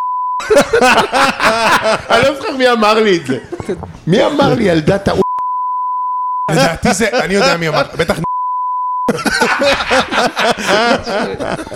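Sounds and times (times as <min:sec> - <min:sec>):
censor beep: 0:00.0 - 0:00.4, 0:05.2 - 0:06.5, 0:08.2 - 0:09.1
laughter: 0:00.4 - 0:02.5, 0:09.1 - 0:11.7
speech: 0:00.5 - 0:05.2, 0:06.5 - 0:08.3, 0:09.1 - 0:11.7.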